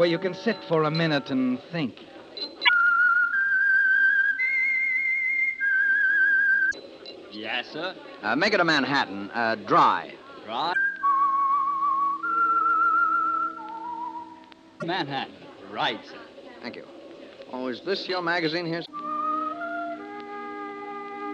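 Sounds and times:
speech: 0:00.0 - 0:02.6, 0:07.5 - 0:10.9, 0:14.8 - 0:19.0
soft steady hum: 0:00.0 - 0:21.3
person whistling a slow theme melody: 0:02.4 - 0:06.8, 0:10.8 - 0:14.4, 0:18.9 - 0:21.3.

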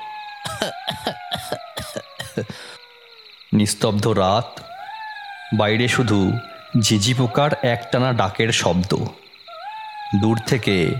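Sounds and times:
dry hacking cough at night: 0:00.5 - 0:02.7
speech: 0:00.6 - 0:00.8, 0:03.5 - 0:04.6, 0:05.5 - 0:09.2, 0:10.1 - 0:10.9.

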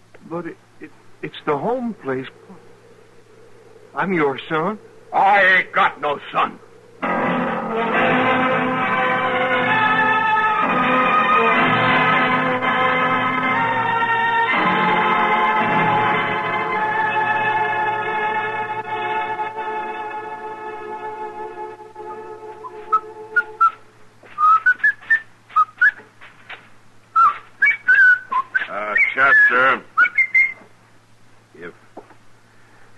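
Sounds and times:
speech: 0:00.3 - 0:02.7, 0:03.9 - 0:07.1
buzzy sustained drone: 0:01.4 - 0:24.0
man whistling a wavering tune: 0:22.0 - 0:26.1, 0:27.1 - 0:30.7.

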